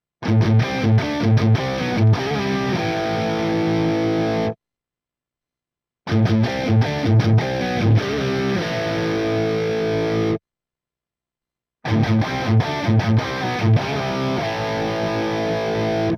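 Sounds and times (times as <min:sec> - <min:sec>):
Crunch HB2CR chrome humbucker pickup tone: 0:00.2 - 0:04.6, 0:06.1 - 0:10.4, 0:11.9 - 0:16.1.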